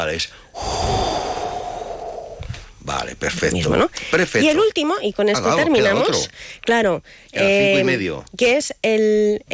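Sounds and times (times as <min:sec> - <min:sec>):
speech: 0:00.0 - 0:01.0, 0:02.9 - 0:09.5
person blowing air imitating wind: 0:00.6 - 0:02.8.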